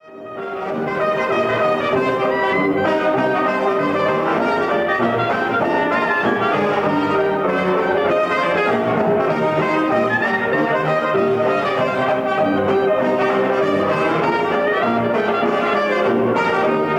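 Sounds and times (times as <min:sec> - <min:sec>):
banjo in acoustic quintet: 0:00.0 - 0:16.9
clarinet in acoustic quintet: 0:00.0 - 0:16.9
trumpet in acoustic quintet: 0:00.0 - 0:16.9.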